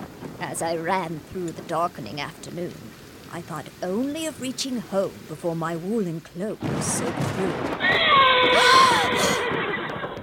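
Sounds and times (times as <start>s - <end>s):
speech: 0.4s - 9.4s
great black carriage horse neighing in a muddy dooryard: 7.8s - 10.2s.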